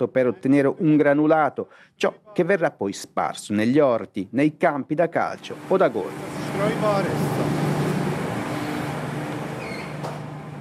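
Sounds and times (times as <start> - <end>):
speech: 0.0 - 7.5
faint high machinery whirring: 5.4 - 10.5
industrial processing machinery running: 5.4 - 10.5.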